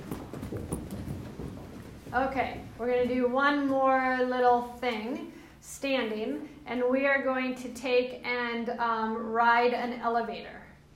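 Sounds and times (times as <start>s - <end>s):
feet stomping on a floor during a standing exercise: 0.0s - 3.9s
speech: 2.1s - 10.6s.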